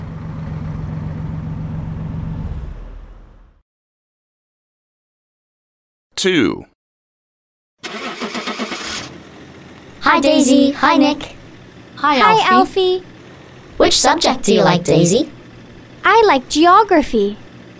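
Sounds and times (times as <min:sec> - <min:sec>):
bus engine idling: 0:00.0 - 0:02.4, 0:07.9 - 0:17.7
speech: 0:06.2 - 0:06.7, 0:10.1 - 0:11.4, 0:12.0 - 0:13.1, 0:13.8 - 0:15.4, 0:16.0 - 0:17.4.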